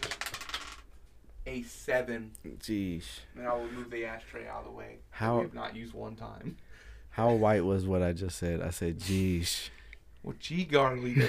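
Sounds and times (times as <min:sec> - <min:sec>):
dice clattering across a hard surface: 0:00.0 - 0:00.9
speech: 0:01.5 - 0:11.2.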